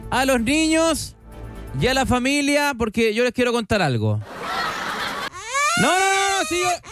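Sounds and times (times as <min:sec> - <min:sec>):
speech: 0:00.1 - 0:04.6, 0:05.8 - 0:06.9
laughter: 0:04.2 - 0:06.8
child wailing in sobbing cries: 0:05.2 - 0:06.9.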